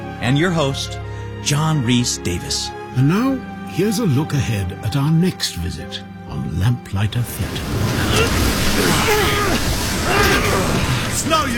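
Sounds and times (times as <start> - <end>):
speech: 0.3 - 11.5
crashing waves in a storm at sea: 7.2 - 11.5.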